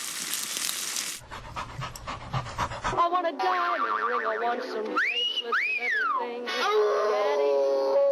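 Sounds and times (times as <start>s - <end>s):
dog panting: 1.2s - 3.2s
speech: 3.0s - 8.0s.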